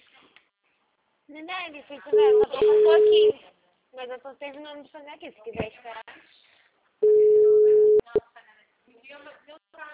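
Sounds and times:
speech: 0:01.3 - 0:06.1
telephone ringback tone while a call is placed: 0:02.1 - 0:03.3, 0:07.0 - 0:08.0.

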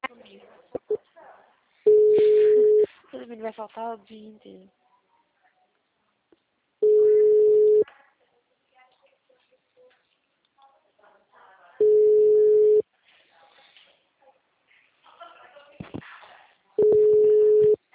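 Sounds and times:
mid-pitched ringback tones of an unanswered phone call: 0:01.9 - 0:02.9, 0:06.8 - 0:07.8, 0:11.8 - 0:12.8, 0:16.8 - 0:17.8
speech: 0:03.3 - 0:04.8.

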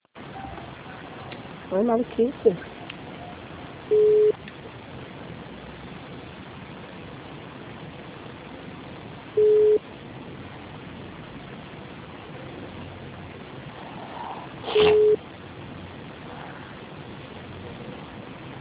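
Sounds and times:
speech: 0:01.7 - 0:02.7
telephone busy tone beeps after a dropped call: 0:03.9 - 0:04.4, 0:09.4 - 0:09.8, 0:14.7 - 0:15.2.

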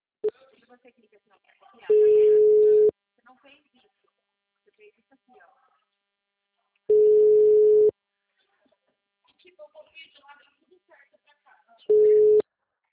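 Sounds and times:
telephone busy signal after a dropped phone call: 0:01.9 - 0:02.9, 0:06.9 - 0:07.9, 0:11.9 - 0:12.4.

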